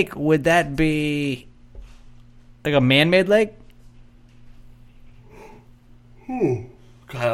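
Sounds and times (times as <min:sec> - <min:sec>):
speech: 0:00.0 - 0:01.5, 0:02.6 - 0:03.6, 0:06.3 - 0:07.3
steady low electrical hum: 0:00.0 - 0:07.3
short breathy yawn with a faint voiced edge: 0:06.2 - 0:06.8.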